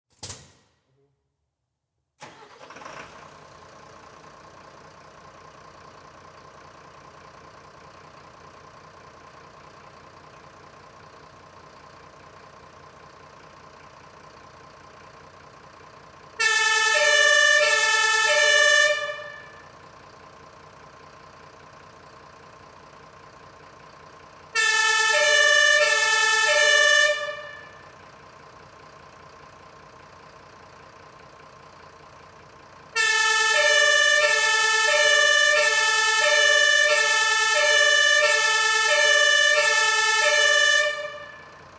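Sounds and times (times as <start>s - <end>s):
vehicle starting: 2.2s - 41.7s
emergency vehicle siren: 16.4s - 19.7s, 24.6s - 27.9s, 33.0s - 41.7s.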